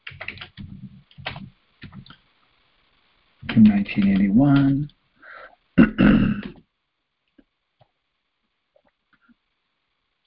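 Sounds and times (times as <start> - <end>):
typing on a computer keyboard: 0.0 - 2.1, 3.4 - 4.8
speech: 3.6 - 5.0.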